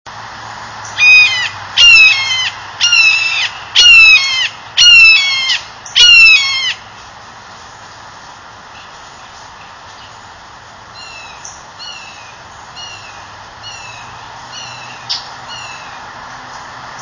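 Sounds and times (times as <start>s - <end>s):
red-shouldered hawk calling: 1.0s - 6.8s.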